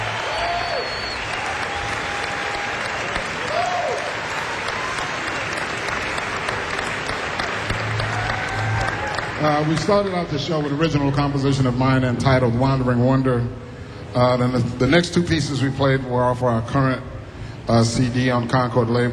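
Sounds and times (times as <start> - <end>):
audience applause for a tenor saxophonist at a jazz performance: 0.0 - 10.4
faint audience whistles: 0.3 - 2.1
speech: 9.4 - 17.1, 17.7 - 19.1.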